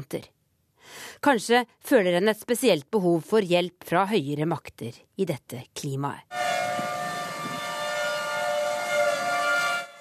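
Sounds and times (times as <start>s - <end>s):
speech: 0.0s - 6.4s
tornado warning siren wailing: 6.3s - 9.9s.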